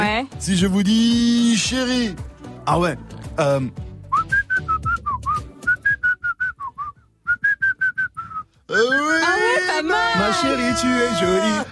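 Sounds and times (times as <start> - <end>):
speech: 0.2 - 3.9, 8.7 - 11.7
person whistling a lively song melody: 4.1 - 9.1.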